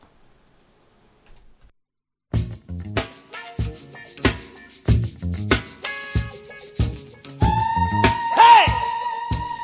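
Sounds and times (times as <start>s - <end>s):
punchy rhythmic soul music in a movie trailer: 2.4s - 9.6s
sharp wailing vocal cry: 7.4s - 9.6s.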